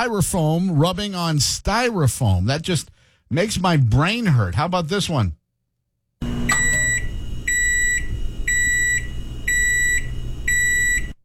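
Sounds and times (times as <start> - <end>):
speech: 0.0 - 5.4
microwave oven beeping after its door has been opened: 6.2 - 11.2.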